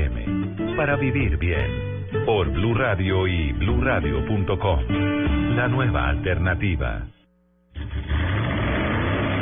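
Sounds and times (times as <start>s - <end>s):
speech: 0.8s - 7.1s
car engine revving into a roar: 7.8s - 9.4s.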